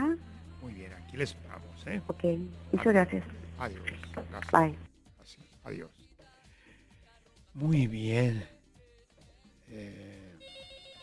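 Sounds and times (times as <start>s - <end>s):
speech: 1.2s - 6.0s, 7.6s - 8.5s, 9.7s - 10.2s
telephone ringing with an incoming call: 10.4s - 11.0s.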